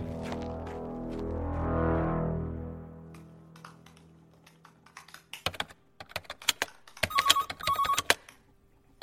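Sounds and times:
low swelling hum: 0.0s - 6.0s
mobile phone called from hidden number ringing: 7.0s - 8.2s.

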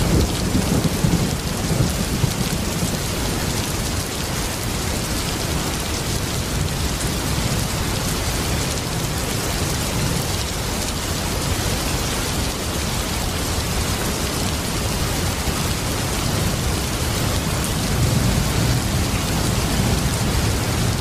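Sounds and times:
close thunder rumble: 0.0s - 4.0s, 16.2s - 20.9s
heavy rain pouring down: 0.0s - 20.9s.

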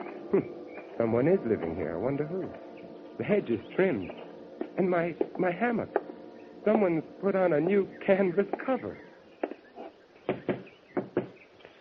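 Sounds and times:
faint hiss: 0.0s - 11.7s
speech: 0.3s - 6.0s, 6.6s - 9.1s
knocking on a door: 10.3s - 11.4s.

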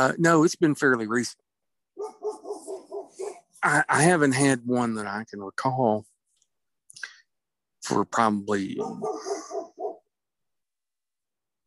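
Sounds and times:
speech: 0.0s - 1.5s, 3.6s - 6.1s, 7.8s - 9.2s
dog barking in sharp yaps: 2.0s - 3.6s, 8.7s - 10.1s.

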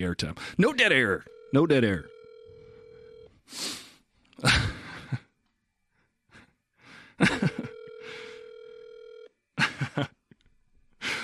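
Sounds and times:
speech: 0.0s - 2.2s, 3.5s - 3.8s, 4.4s - 4.7s, 7.2s - 7.6s, 10.0s - 10.2s
phone line ringback tone: 1.1s - 3.3s, 7.3s - 9.3s
person breathing and sighing: 6.3s - 7.3s, 7.9s - 8.7s, 11.0s - 11.2s.

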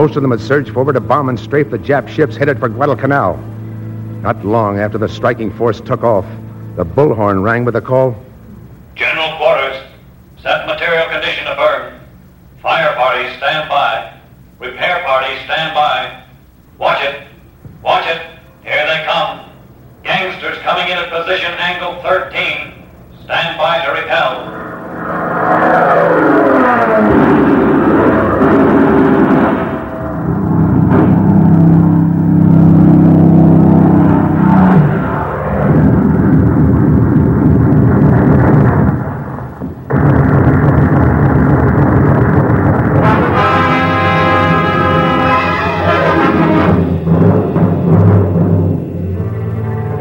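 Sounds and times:
speech: 0.0s - 3.5s, 4.2s - 8.2s, 20.4s - 25.2s
Japanese dive bombers and torpedo planes diving, engines droning: 0.0s - 49.9s
shrill rising whine: 0.0s - 49.9s
bursts and explosions: 24.5s - 48.9s.

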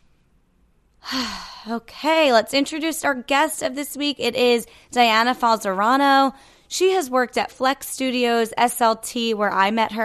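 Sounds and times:
deep breath in and out: 1.0s - 1.7s, 6.4s - 6.7s
speech: 1.1s - 10.0s.

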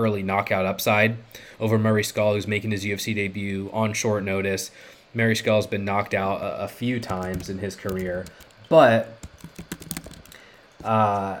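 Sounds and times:
speech: 0.0s - 9.6s, 10.8s - 11.3s
fast typing on a computer keyboard: 7.0s - 10.4s.

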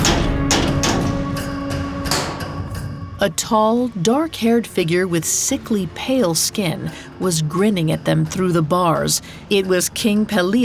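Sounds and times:
sharp raps on a prison cell door: 0.0s - 2.7s
speech: 3.2s - 10.6s.

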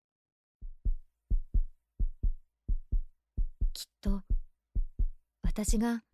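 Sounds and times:
heartbeat: 0.6s - 6.1s
speech: 4.0s - 4.3s, 5.6s - 6.1s.

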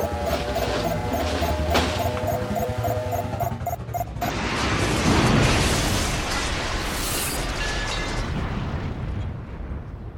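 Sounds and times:
steady tonal hum: 0.0s - 4.4s
rocket ship crash-landing on a planet and breaking to pieces: 4.4s - 9.4s.

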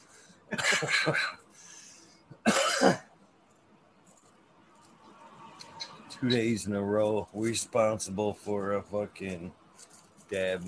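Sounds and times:
speech: 0.5s - 1.4s, 6.2s - 9.6s, 10.3s - 10.6s
loud harsh raspy coughing fit: 0.5s - 1.5s, 2.3s - 3.1s.

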